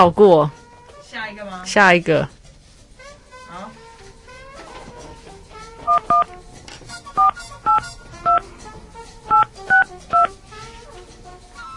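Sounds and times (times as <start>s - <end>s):
speech: 0.0s - 0.6s, 1.2s - 2.4s
telephone keypad touch-tone beeps: 5.9s - 6.3s, 9.3s - 10.3s.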